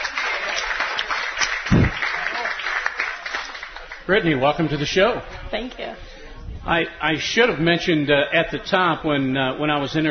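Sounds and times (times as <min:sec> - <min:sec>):
live audience applauding: 0:00.0 - 0:04.1
speech: 0:04.1 - 0:10.1.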